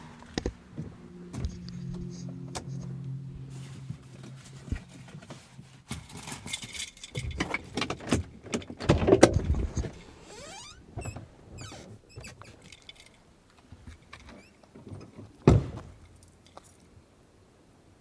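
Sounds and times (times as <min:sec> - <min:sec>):
low idling car engine hum: 0:00.0 - 0:05.8
rustling and shuffling of someone climbing out of a car: 0:00.1 - 0:17.0.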